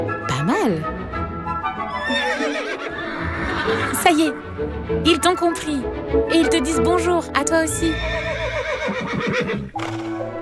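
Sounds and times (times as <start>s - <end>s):
speech: 0.0s - 1.0s, 1.8s - 8.4s, 9.4s - 10.3s
horses neighing: 1.8s - 4.4s, 7.8s - 10.3s.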